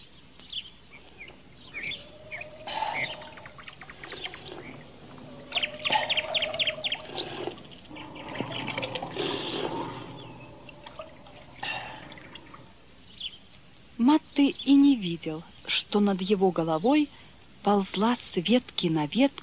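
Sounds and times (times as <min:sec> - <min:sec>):
high bird chirps: 0:00.0 - 0:13.4
water flowing and gurgling: 0:00.8 - 0:13.2
speech: 0:15.1 - 0:19.4.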